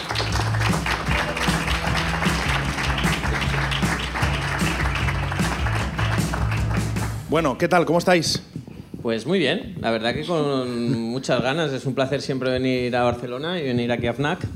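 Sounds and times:
audience applause welcoming a music group in a store: 0:00.0 - 0:07.2
low music: 0:00.0 - 0:09.0
speech: 0:07.3 - 0:14.5.

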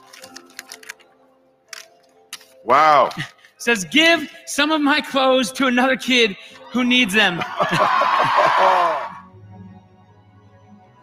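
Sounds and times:
paper being unfolded: 0:00.0 - 0:01.0
speech: 0:02.6 - 0:09.2
laughter: 0:06.7 - 0:09.2.

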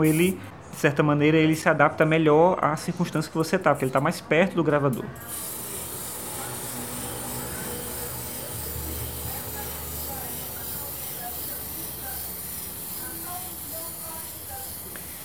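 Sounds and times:
speech: 0:00.0 - 0:05.5
toy rubbing and whirring on a table: 0:05.2 - 0:15.2.

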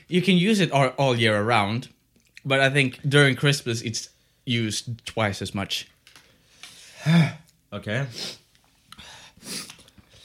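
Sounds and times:
speech: 0:00.1 - 0:05.9, 0:07.0 - 0:08.4, 0:09.4 - 0:09.7
person sniffing through the nose: 0:08.1 - 0:10.2.

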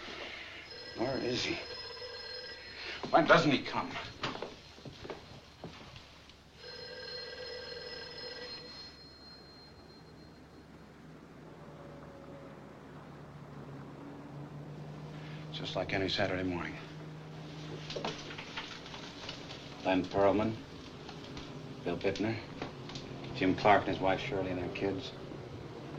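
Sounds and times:
telephone bell ringing: 0:00.4 - 0:03.4, 0:06.5 - 0:10.8
speech: 0:01.0 - 0:01.9, 0:03.0 - 0:04.3, 0:15.7 - 0:16.9, 0:19.9 - 0:20.7, 0:21.8 - 0:22.5, 0:23.4 - 0:25.2.

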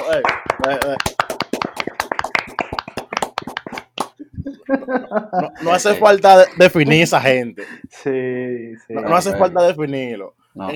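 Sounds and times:
small group clapping: 0:00.0 - 0:04.2
speech: 0:00.1 - 0:01.2, 0:04.7 - 0:10.7.

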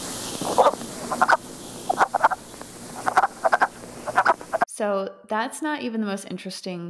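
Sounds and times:
wood frogs calling in duck-like clucking croaks: 0:00.0 - 0:04.7
speech: 0:04.8 - 0:06.8.

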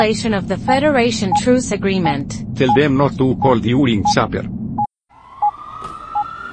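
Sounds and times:
speech: 0:00.0 - 0:04.6
ambulance siren: 0:05.1 - 0:06.5.

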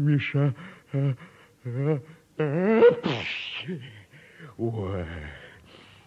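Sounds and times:
speech: 0:00.0 - 0:05.4
person whimpering: 0:00.9 - 0:04.0
person wailing and moaning: 0:01.0 - 0:03.9
loud sneeze: 0:02.8 - 0:03.7.

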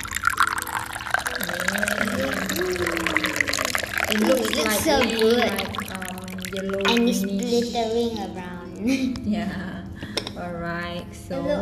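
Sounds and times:
tea pouring from a teapot into a cup: 0:00.0 - 0:09.0
speech: 0:04.1 - 0:05.9, 0:06.5 - 0:09.7, 0:10.4 - 0:11.5.

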